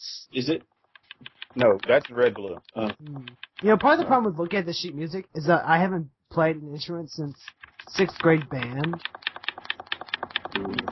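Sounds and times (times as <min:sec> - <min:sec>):
speech: 0:00.3 - 0:09.2, 0:10.6 - 0:10.8
rapid typing on a keyboard: 0:00.8 - 0:04.7, 0:07.3 - 0:10.8.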